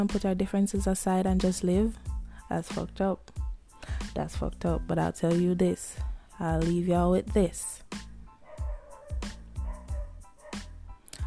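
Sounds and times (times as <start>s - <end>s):
speech: 0.0s - 8.1s
dogs barking with yaps, woofs and higher yips: 8.4s - 10.8s.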